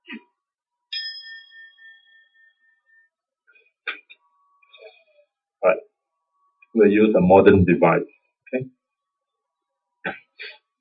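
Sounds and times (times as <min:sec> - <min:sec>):
singing bowl struck as a gong ringing: 0:00.9 - 0:03.1
speech: 0:05.6 - 0:05.9, 0:06.8 - 0:08.8.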